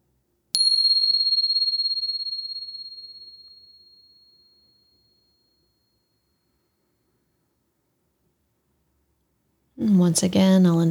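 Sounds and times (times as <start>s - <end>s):
meditation bell struck: 0.6s - 6.0s
speech: 9.8s - 10.8s.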